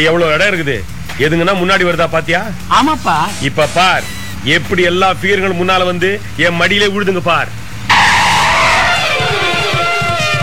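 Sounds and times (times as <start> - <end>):
speech: 0.0 - 7.6
rough bus engine rumble: 0.0 - 10.4
bus tires screeching while braking hard: 1.6 - 10.4
juddering low thumps of a slowing bus: 2.5 - 4.9.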